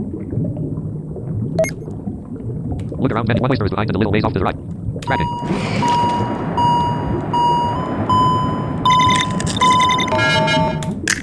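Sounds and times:
low rumbling background: 0.0s - 11.1s
speech: 3.0s - 6.4s
video game low-air electronic warning beeps: 5.1s - 10.9s.

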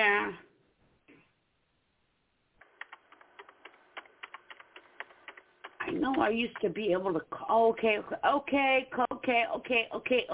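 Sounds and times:
rapid keyboard typing of a message: 2.6s - 7.0s
speech: 6.1s - 10.3s.

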